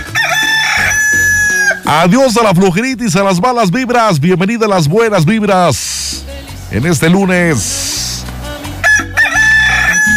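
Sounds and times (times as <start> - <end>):
rooster crowing: 0.0 - 1.9, 8.8 - 10.1
speech: 1.9 - 8.0.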